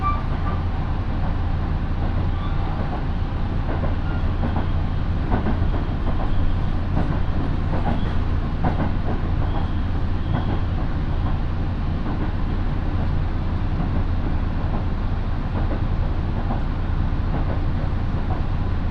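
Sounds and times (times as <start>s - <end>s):
brief train squeaks: 0.0s - 0.6s, 4.0s - 4.6s, 9.4s - 10.7s
faint rail clicks: 0.0s - 18.9s
local train rolling between stations: 0.0s - 18.9s.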